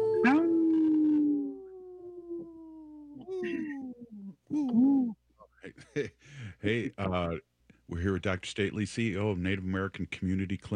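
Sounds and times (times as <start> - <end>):
people imitating wolf howls: 0.0 - 5.2
speech: 5.9 - 10.7.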